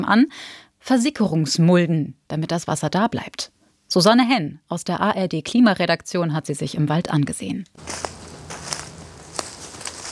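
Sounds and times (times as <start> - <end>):
speech: 0.0 - 8.2
footsteps crunching on woodland ground in a hillside forest near Karlsruhe: 7.8 - 10.0.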